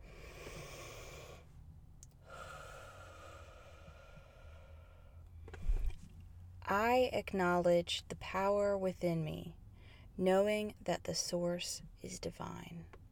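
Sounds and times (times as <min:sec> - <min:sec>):
slow deep breaths during a guided affirmation session: 0:00.0 - 0:01.6, 0:02.2 - 0:05.9
speech: 0:06.7 - 0:09.6, 0:10.2 - 0:13.0.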